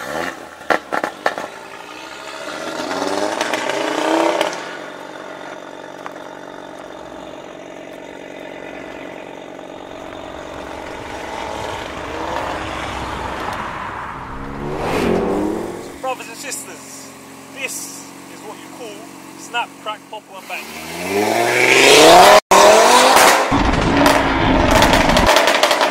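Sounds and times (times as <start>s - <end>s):
four-wheel-drive car 2.5-litre engine revving hard: 0.0s - 25.8s.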